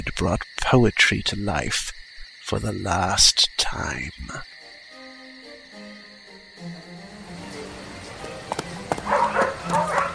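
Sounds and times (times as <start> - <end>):
speech: 0.0 - 4.5
hoof-like clops: 7.4 - 10.1
hunting dogs barking: 8.9 - 10.1.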